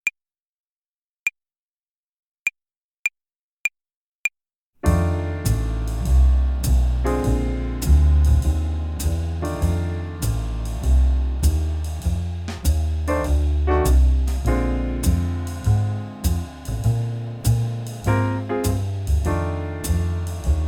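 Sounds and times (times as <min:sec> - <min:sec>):
slow play-along backing track: 0:04.8 - 0:20.6.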